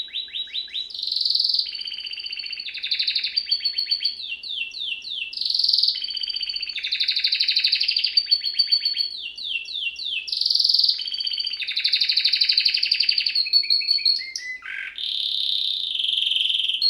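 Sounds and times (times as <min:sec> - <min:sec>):
male Belgian canary singing: 0:00.0 - 0:16.8.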